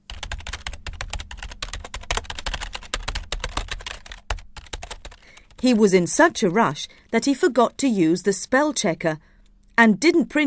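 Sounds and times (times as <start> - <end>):
fast typing on a computer keyboard: 0.0 - 7.4
speech: 5.6 - 10.4.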